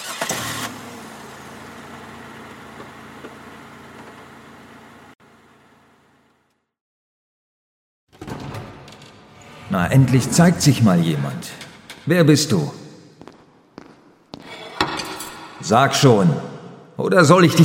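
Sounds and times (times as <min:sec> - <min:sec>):
car engine starting: 0:00.0 - 0:06.4
speech: 0:09.7 - 0:12.8, 0:15.7 - 0:17.6.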